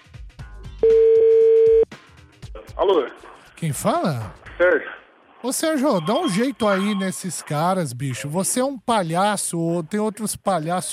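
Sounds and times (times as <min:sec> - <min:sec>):
telephone dial tone while a call is being placed: 0:00.8 - 0:01.8
speech: 0:02.9 - 0:10.9.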